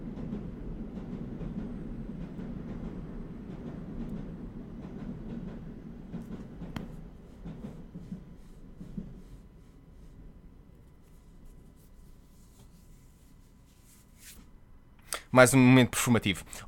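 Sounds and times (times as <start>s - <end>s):
CP train rumbling past: 0.0s - 10.7s
speech: 15.4s - 16.6s.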